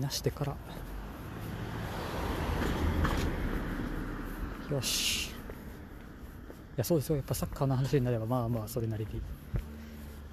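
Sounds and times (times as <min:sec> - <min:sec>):
speech: 0:00.0 - 0:00.9, 0:04.7 - 0:05.3, 0:06.8 - 0:09.6
car passing by outside: 0:00.3 - 0:07.0, 0:08.9 - 0:10.3.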